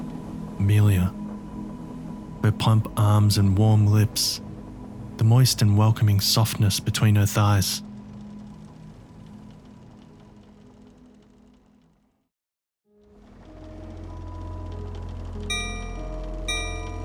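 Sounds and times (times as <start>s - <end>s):
low rumbling engine-like drone: 0.0s - 12.2s, 13.0s - 17.0s
speech: 0.6s - 1.2s, 2.4s - 4.5s, 5.2s - 7.9s
ship's bell ringing: 15.5s - 17.0s.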